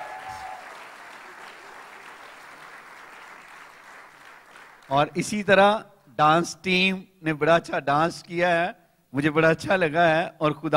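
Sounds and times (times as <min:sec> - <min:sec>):
audience applauding: 0:00.0 - 0:04.9
speech: 0:04.9 - 0:10.7.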